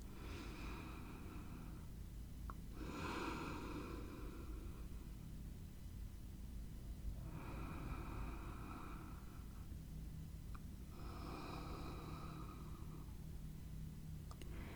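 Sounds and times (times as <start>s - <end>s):
constant low hum: 0.0s - 14.7s
slow deep breathing during guided breathing exercise: 0.1s - 2.0s, 2.7s - 5.2s, 7.2s - 9.8s, 10.8s - 13.3s, 14.4s - 14.7s.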